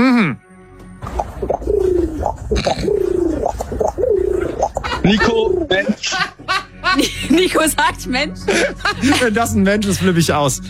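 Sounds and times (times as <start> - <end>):
person imitating pigeon cooing as a guessing-game puzzle: 1.9 - 5.7
laughter: 4.8 - 10.0
speech: 7.0 - 10.6.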